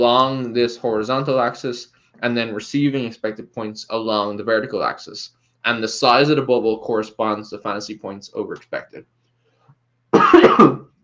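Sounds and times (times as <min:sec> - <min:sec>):
speech: 0:00.0 - 0:09.2, 0:10.3 - 0:10.9
rough throaty cough: 0:10.2 - 0:10.9.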